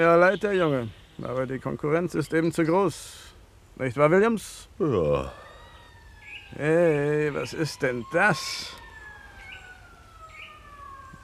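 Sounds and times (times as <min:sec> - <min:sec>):
speech: 0:00.0 - 0:05.4, 0:06.5 - 0:08.8
police car sirens wailing: 0:04.8 - 0:11.2.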